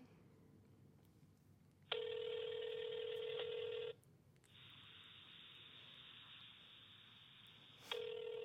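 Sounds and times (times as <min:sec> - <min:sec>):
phone ringing on speakerphone: 0:01.9 - 0:04.0, 0:07.9 - 0:08.4.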